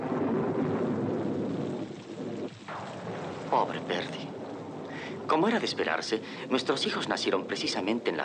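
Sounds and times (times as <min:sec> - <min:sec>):
deep rolling rumble of thunder: 0:00.0 - 0:08.2
steady rain at night: 0:00.0 - 0:08.2
speech: 0:03.5 - 0:04.3, 0:05.3 - 0:08.2.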